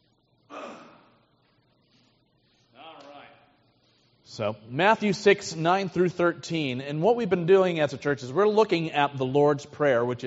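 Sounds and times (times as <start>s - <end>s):
short breathy coughs with a rough voiced edge: 0.5s - 1.2s
speech: 4.3s - 10.2s.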